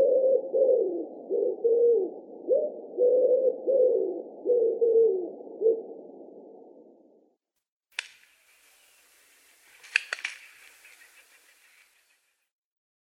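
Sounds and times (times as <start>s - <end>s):
common wood pigeon cooing in Russia: 0.0s - 6.1s, 8.6s - 12.4s
sharp click: 8.0s - 8.4s, 9.8s - 11.0s.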